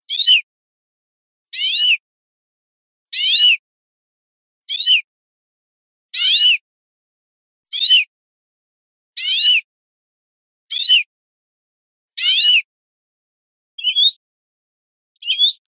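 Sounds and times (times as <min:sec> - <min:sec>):
greenfinch calling: 0:00.1 - 0:00.5, 0:01.6 - 0:02.0, 0:03.1 - 0:03.6, 0:04.7 - 0:05.1, 0:06.2 - 0:06.6, 0:07.7 - 0:08.1, 0:09.2 - 0:09.7, 0:10.7 - 0:11.1, 0:12.2 - 0:12.7, 0:13.8 - 0:14.2, 0:15.2 - 0:15.6.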